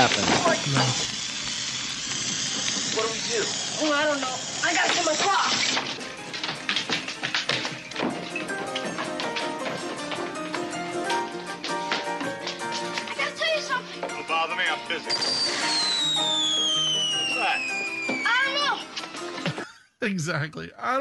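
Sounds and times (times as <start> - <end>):
speech: 0.0 - 1.2, 3.0 - 6.0, 20.0 - 20.9
fireworks crackling and popping: 0.0 - 19.6
high whistling firework rocket: 15.1 - 18.6.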